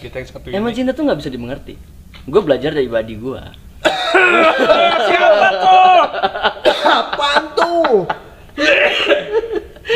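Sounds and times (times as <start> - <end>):
speech: 0.0 - 9.9
person coughing from smoking too much: 3.8 - 4.6, 6.6 - 7.1, 8.6 - 9.4
laughter: 3.8 - 9.9.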